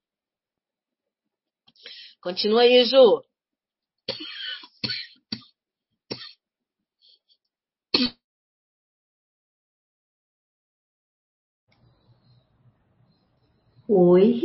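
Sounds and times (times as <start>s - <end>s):
speech: 2.2s - 3.3s, 13.9s - 14.4s
person coughing: 4.1s - 5.5s, 6.1s - 6.4s, 8.0s - 8.2s.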